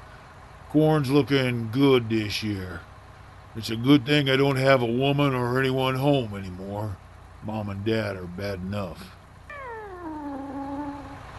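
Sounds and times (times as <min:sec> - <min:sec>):
low steady hum: 0:00.0 - 0:11.3
speech: 0:00.7 - 0:02.9, 0:03.6 - 0:09.2
cat yowling: 0:09.5 - 0:11.2.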